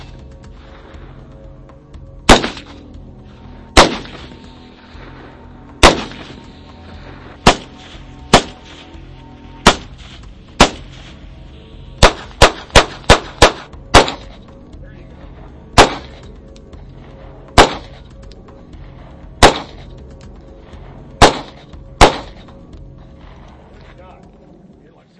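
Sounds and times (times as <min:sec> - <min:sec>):
gunfire from various guns at a shooting range: 0:02.3 - 0:02.9, 0:03.8 - 0:04.5, 0:05.8 - 0:06.5, 0:07.4 - 0:08.8, 0:09.6 - 0:11.2, 0:12.0 - 0:14.4, 0:15.8 - 0:16.3, 0:17.5 - 0:18.0, 0:19.4 - 0:19.9, 0:21.2 - 0:22.5.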